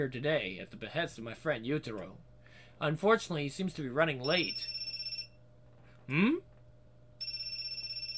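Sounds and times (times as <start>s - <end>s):
speech: 0.0s - 4.8s, 6.1s - 6.5s
cell phone ringing with incoming call: 4.2s - 5.4s, 7.2s - 8.1s.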